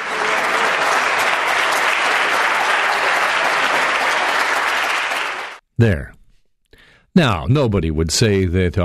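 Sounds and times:
applause from a large group of legislators: 0.0s - 5.6s
speech: 5.8s - 6.2s, 7.2s - 8.8s.

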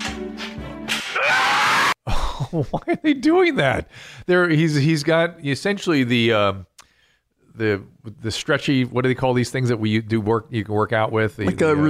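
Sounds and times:
loud shrill scream: 1.1s - 2.0s
speech: 2.5s - 6.7s, 7.6s - 11.8s.

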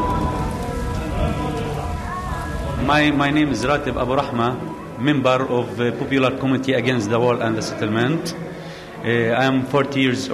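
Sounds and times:
rain pattering on hard surfaces: 0.0s - 6.5s
speech: 2.9s - 8.4s, 9.0s - 10.3s.

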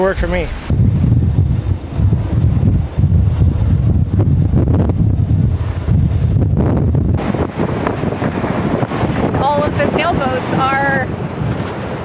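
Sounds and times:
wind: 0.0s - 12.0s
heavy high waves crashing against a pier: 7.2s - 12.0s.

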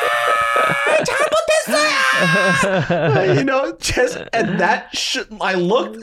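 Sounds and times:
voice imitating a mother's anguished wailing scream beside a casket: 0.0s - 3.4s
laughter: 0.0s - 4.8s
sobbing, choked bursts: 0.0s - 5.0s
speech: 2.2s - 6.0s.

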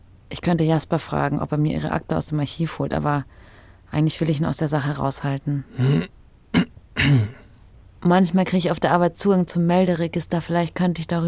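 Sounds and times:
speech: 0.4s - 6.2s, 7.0s - 7.4s, 8.0s - 11.2s
person clearing throat: 5.7s - 7.5s.

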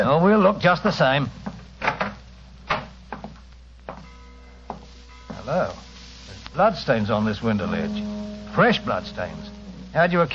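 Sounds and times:
speech: 0.1s - 1.5s, 5.5s - 5.9s, 6.5s - 10.3s
faint creak of a wooden bedroom door pushed open: 1.8s - 3.3s.

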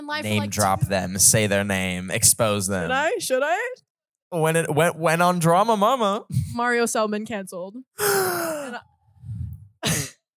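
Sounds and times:
speech: 0.1s - 8.9s
person gasping: 8.0s - 9.7s.

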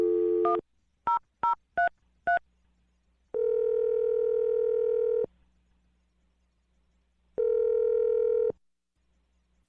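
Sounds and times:
telephone dial tone: 0.0s - 0.6s, 3.4s - 5.3s, 7.4s - 8.6s
telephone ringing tones: 3.4s - 5.3s, 7.4s - 8.6s.

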